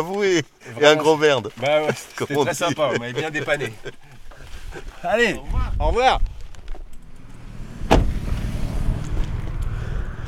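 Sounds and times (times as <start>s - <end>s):
speech: 0.0s - 4.1s, 4.7s - 6.3s
laughter: 0.6s - 5.4s
cars passing at a motorway toll station: 6.8s - 10.2s
continuous engine drone: 7.0s - 10.2s
sharp thump: 7.7s - 8.6s.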